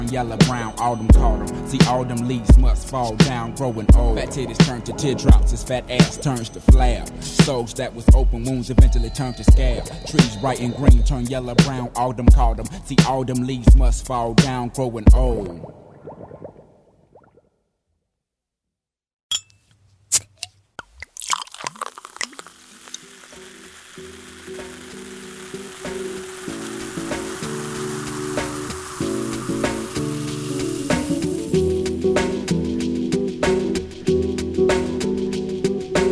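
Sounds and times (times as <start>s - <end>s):
airy atmospheric music: 0.0s - 8.0s, 23.2s - 36.0s
speech: 0.1s - 16.4s
tiny bubbling pops fizzing and crackling: 15.1s - 17.5s, 20.8s - 32.9s.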